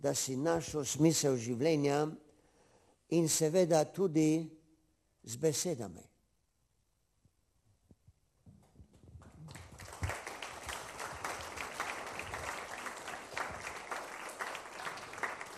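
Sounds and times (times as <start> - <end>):
speech: 0.0 - 2.2, 3.1 - 4.6, 5.2 - 6.1
audience applause: 9.5 - 15.5.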